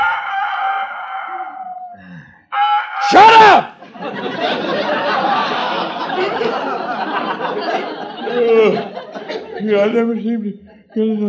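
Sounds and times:
rooster on a farm crowing: 0:00.0 - 0:03.2
laughter: 0:03.8 - 0:11.2
speech: 0:09.6 - 0:11.2.

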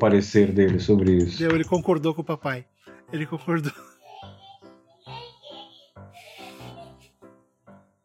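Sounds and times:
speech: 0:00.0 - 0:04.4
young child laughing and squealing while running around the house: 0:03.9 - 0:07.2.

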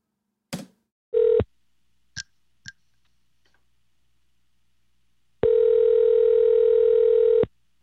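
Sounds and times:
telephone ringback tone: 0:01.2 - 0:01.4, 0:05.4 - 0:07.5.

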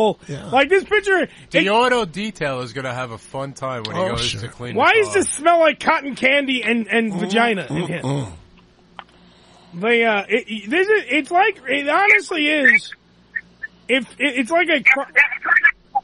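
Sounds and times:
speech: 0:00.0 - 0:08.4, 0:09.7 - 0:13.0, 0:13.9 - 0:15.6
thin tinny garbled voice over a phone line: 0:15.0 - 0:15.8.

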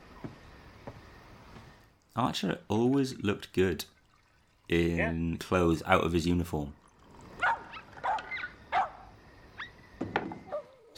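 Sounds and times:
speech: 0:02.2 - 0:04.0, 0:04.7 - 0:06.8
dog barking in short sharp yaps: 0:07.4 - 0:09.0.

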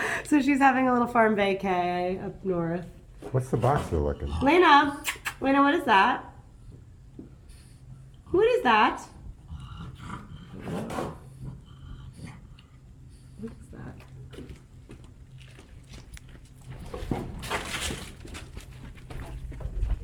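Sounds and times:
speech: 0:00.3 - 0:06.3, 0:08.3 - 0:09.2
dog retching and heaving up food: 0:03.6 - 0:05.5, 0:08.2 - 0:12.6
steady low hum: 0:06.3 - 0:20.0.

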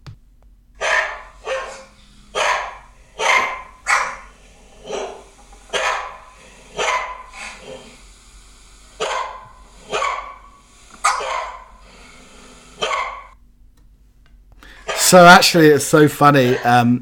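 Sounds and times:
steady low hum: 0:00.0 - 0:16.1
chorus of dogs barking: 0:00.8 - 0:08.1, 0:09.0 - 0:13.4, 0:14.7 - 0:15.3, 0:16.4 - 0:16.8
speech: 0:15.1 - 0:17.0.

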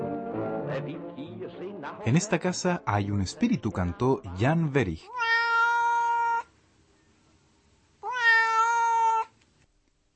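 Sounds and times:
speech: 0:00.8 - 0:05.4
cat meowing insistently with long loud cries: 0:05.0 - 0:06.5, 0:08.0 - 0:09.4.

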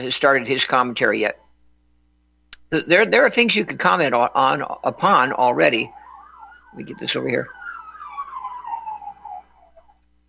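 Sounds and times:
speech: 0:00.0 - 0:01.4, 0:02.7 - 0:06.0, 0:06.7 - 0:07.6
ambulance siren wailing: 0:04.6 - 0:10.0.

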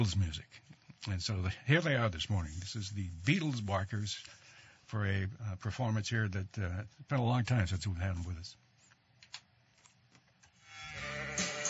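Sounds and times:
speech: 0:00.0 - 0:08.6
goat-like bleating in novelty animal music record: 0:10.7 - 0:11.6.

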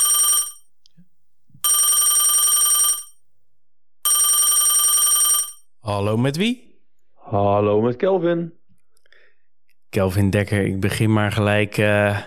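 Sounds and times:
telephone ringing with electronic bell tone: 0:00.0 - 0:00.7, 0:01.6 - 0:03.2, 0:04.0 - 0:05.7
speech: 0:05.9 - 0:06.7, 0:07.3 - 0:08.6, 0:10.0 - 0:12.2.

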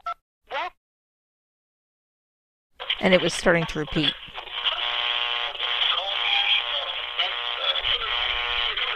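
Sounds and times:
static hiss and crackle: 0:02.8 - 0:08.9
tinny narrow-band radio broadcast with voices and tones: 0:02.8 - 0:08.9
speech: 0:03.0 - 0:04.4.

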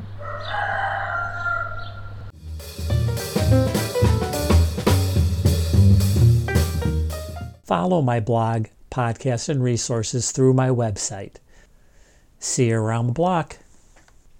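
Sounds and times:
rooster crowing: 0:00.2 - 0:02.3
music with a strong beat: 0:02.4 - 0:07.6
speech: 0:07.7 - 0:11.4, 0:12.4 - 0:13.6.

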